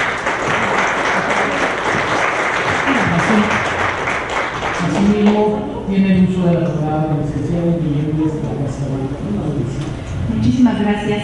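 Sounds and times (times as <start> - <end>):
audience applause: 0.0 - 5.5
speech: 6.6 - 11.2.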